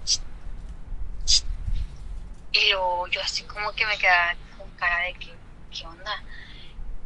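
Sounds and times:
low rumble: 0:00.0 - 0:07.0
voice imitating a psst hiss of a fridge opening: 0:01.3 - 0:01.5
speech: 0:03.1 - 0:06.4.

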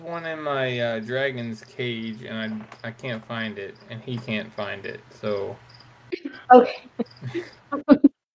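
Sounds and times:
speech: 0:00.1 - 0:08.1
cricket chirping: 0:01.2 - 0:07.7.

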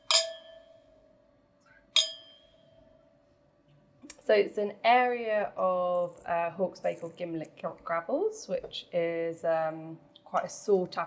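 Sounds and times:
wine glasses clinking in a toast: 0:00.0 - 0:00.8, 0:02.0 - 0:02.6
speech: 0:04.3 - 0:11.0.

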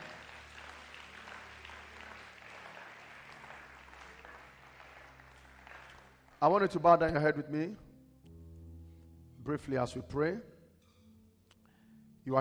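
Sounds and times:
audience clapping in praise: 0:00.0 - 0:06.9
speech: 0:06.4 - 0:07.9, 0:09.5 - 0:10.5.

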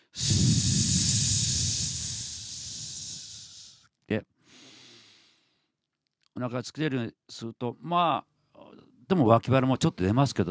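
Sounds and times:
deep belly inhalation during a voice-training breathing exercise: 0:00.0 - 0:03.8, 0:04.4 - 0:05.6
speech: 0:06.4 - 0:08.3, 0:09.1 - 0:10.4.

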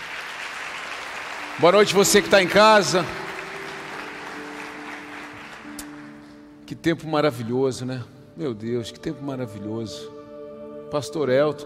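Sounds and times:
large audience applauding: 0:00.0 - 0:06.4
speech: 0:01.6 - 0:03.2, 0:06.7 - 0:10.1, 0:10.9 - 0:11.6
sustained low musical tones humming: 0:01.6 - 0:11.6.

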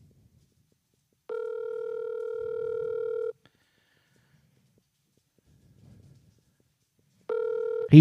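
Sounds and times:
faint rustling: 0:00.0 - 0:07.9
telephone ringback tone from an outgoing phone call: 0:01.3 - 0:03.4, 0:07.3 - 0:07.9.

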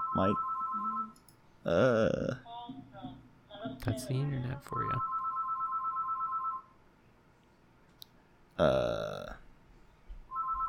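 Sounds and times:
electronic telephone ringing unanswered: 0:00.0 - 0:01.2, 0:05.0 - 0:06.7, 0:10.3 - 0:10.6
speech: 0:00.1 - 0:00.6, 0:01.6 - 0:02.8, 0:03.6 - 0:05.1, 0:08.6 - 0:09.4.

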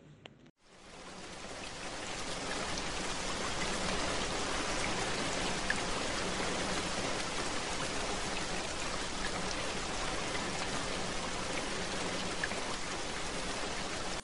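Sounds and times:
steady rain pouring with patters of drops: 0:00.6 - 0:14.2.

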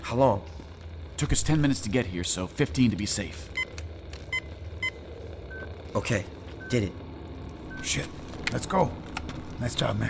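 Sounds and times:
low steady rumble of noise: 0:00.0 - 0:10.0
speech: 0:00.1 - 0:00.6, 0:01.2 - 0:03.6, 0:06.0 - 0:07.0, 0:07.8 - 0:09.0, 0:09.6 - 0:10.0
electronic beeps of a timer being set: 0:03.5 - 0:05.8, 0:07.7 - 0:08.1.

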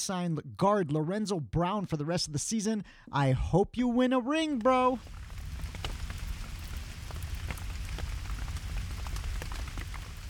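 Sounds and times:
speech: 0:00.0 - 0:05.2
rain falling during scattered showers in Toronto: 0:04.6 - 0:10.2.

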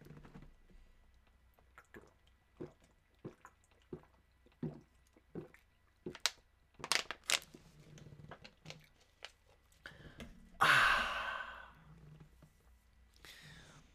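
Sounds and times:
person gulping water from a bottle: 0:01.2 - 0:06.3
loud breathy gasp: 0:09.9 - 0:11.8.

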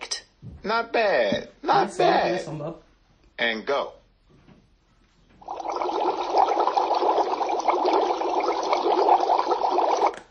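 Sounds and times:
speech: 0:00.6 - 0:04.0
boiling water bubbling: 0:05.4 - 0:10.2.

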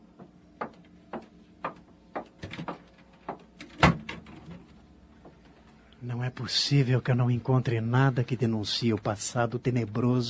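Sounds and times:
wooden clunks and taps: 0:00.2 - 0:04.2
door swinging shut with a solid thud: 0:03.6 - 0:04.7
speech: 0:06.1 - 0:10.2.

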